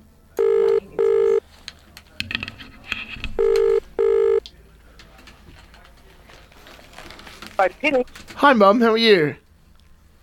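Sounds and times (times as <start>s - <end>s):
telephone ringing out on the line with double-beat ring tones: 0.4s - 1.4s, 3.4s - 4.4s
speech: 7.6s - 9.4s.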